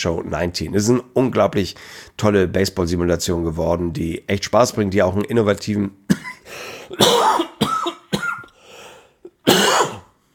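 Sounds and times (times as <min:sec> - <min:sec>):
speech: 0:00.0 - 0:07.4
person coughing harshly: 0:06.1 - 0:08.6, 0:09.3 - 0:10.2.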